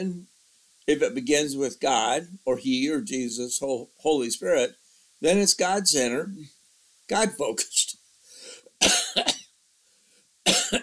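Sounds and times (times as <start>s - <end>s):
speech: 0.0s - 0.3s, 0.9s - 8.0s, 8.8s - 9.3s
person with COPD coughing harshly: 8.8s - 9.4s, 10.5s - 10.8s.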